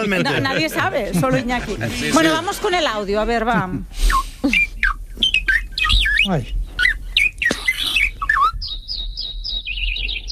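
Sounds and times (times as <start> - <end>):
laughter: 0.0 - 3.8
speech: 0.0 - 4.7, 6.3 - 6.6
several songbirds singing: 4.1 - 10.3.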